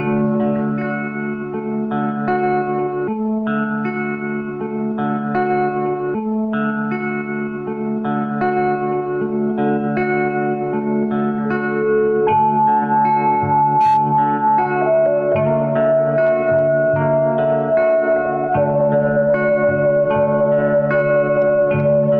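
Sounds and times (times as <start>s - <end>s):
guitar: 0.0s - 22.1s
flute: 13.4s - 22.1s.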